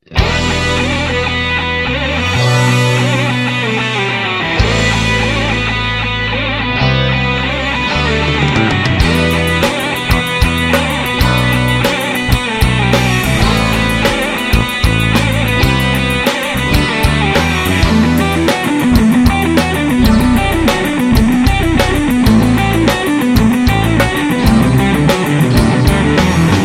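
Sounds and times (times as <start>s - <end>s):
electric guitar playing with a classical touch: 0.0s - 26.6s.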